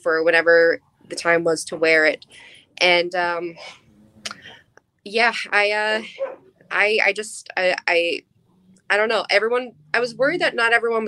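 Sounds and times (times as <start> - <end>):
speech: 0.0 - 4.4, 5.0 - 8.3, 8.9 - 11.0
several dogs barking: 6.0 - 6.6.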